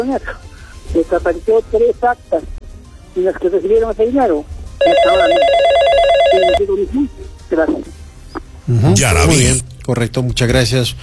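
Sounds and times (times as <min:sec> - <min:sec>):
speech: 0:00.0 - 0:02.6, 0:03.2 - 0:07.9, 0:08.7 - 0:11.0
telephone ringing for incoming call: 0:04.8 - 0:06.7.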